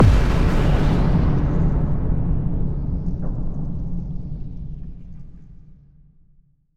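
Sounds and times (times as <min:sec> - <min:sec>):
ship explosion: 0:00.0 - 0:03.8.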